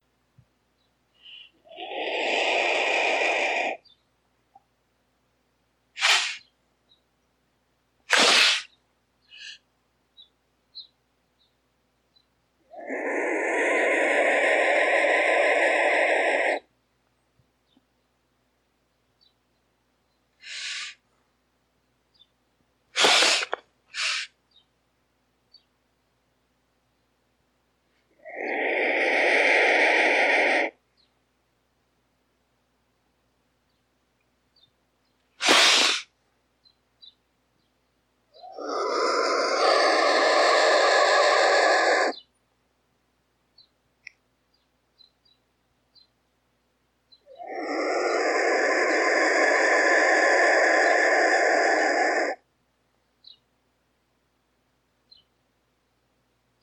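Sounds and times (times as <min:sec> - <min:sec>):
black vulture calling: 0:01.2 - 0:04.0, 0:12.6 - 0:16.7, 0:20.4 - 0:21.0, 0:23.0 - 0:24.4, 0:28.1 - 0:30.8, 0:35.4 - 0:36.1, 0:38.3 - 0:42.3, 0:47.2 - 0:52.5.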